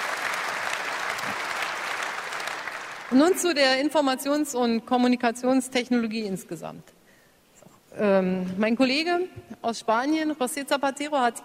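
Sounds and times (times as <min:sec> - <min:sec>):
audience applause during a political speech: 0:00.0 - 0:03.6
speech: 0:03.1 - 0:07.0, 0:08.0 - 0:11.4.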